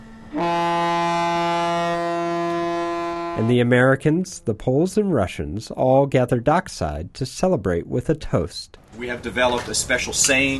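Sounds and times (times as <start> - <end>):
ship's horn on a boat leaving port after a customs check: 0.0 - 4.4
speech: 3.4 - 10.5.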